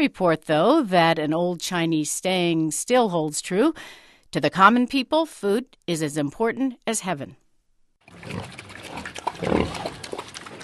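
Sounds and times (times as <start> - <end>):
speech: 0.0 - 7.4
pigs grunting and snorting at feeding time: 8.1 - 10.6.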